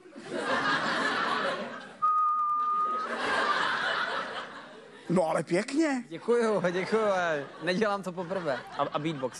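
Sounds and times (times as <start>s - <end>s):
people laughing and snickering: 0.0s - 5.2s, 6.2s - 9.3s
person whistling a single sustained note: 2.0s - 3.2s
speech: 5.1s - 9.3s.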